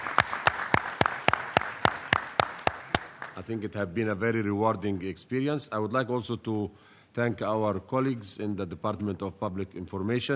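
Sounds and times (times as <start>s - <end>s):
crisp evenly spaced claps: 0.0s - 3.5s
audience applause: 0.0s - 3.6s
speech: 3.4s - 10.3s.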